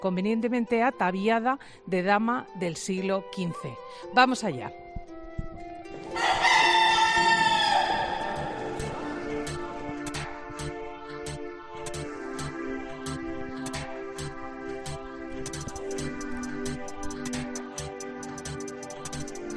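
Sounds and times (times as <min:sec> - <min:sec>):
speech: 0:00.0 - 0:04.8
rooster crowing at a cathedral in Spain: 0:06.1 - 0:09.1
sharp regular clicks: 0:08.8 - 0:19.5.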